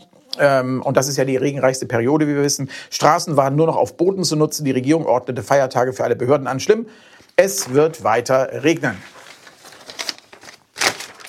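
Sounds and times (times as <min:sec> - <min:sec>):
speech: 0:00.4 - 0:09.2
paper page being turned with crisp rustling: 0:07.4 - 0:11.2.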